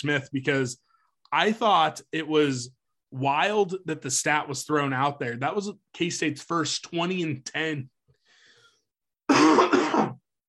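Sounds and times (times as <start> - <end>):
speech: 0.0 - 7.9
single rough rasping cough: 9.3 - 10.3.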